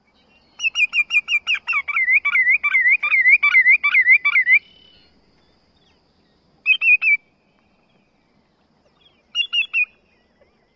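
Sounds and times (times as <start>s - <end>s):
Greater Yellowlegs song: 0.0s - 10.7s.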